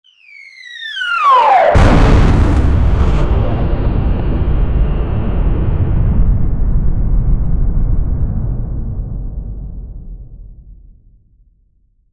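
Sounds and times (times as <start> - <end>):
cosmic sound of stars exploding: 1.6 - 10.1.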